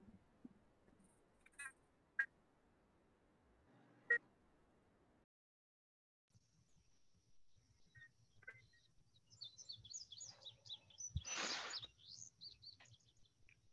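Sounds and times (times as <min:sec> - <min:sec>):
birds chirping: 0:07.8 - 0:13.6.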